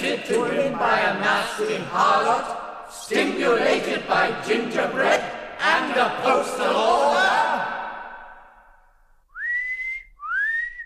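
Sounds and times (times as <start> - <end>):
speech: 0.1 - 7.7
loud sharp rising human whistles: 9.3 - 10.8.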